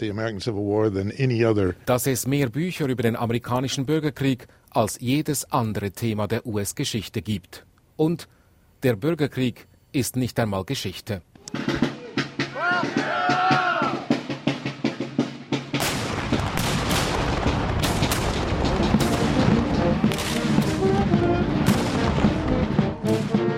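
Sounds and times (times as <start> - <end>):
speech: 0.0 - 11.8
people shouting at a Civil War battle reenactment: 11.9 - 14.2
loud bangs at a Civil War battle reenactment: 15.6 - 23.4
gunshots at a Civil War battle reenactment: 15.7 - 23.4
dense crackle of many overlapping shots at a Civil War battle reenactment: 15.8 - 22.5.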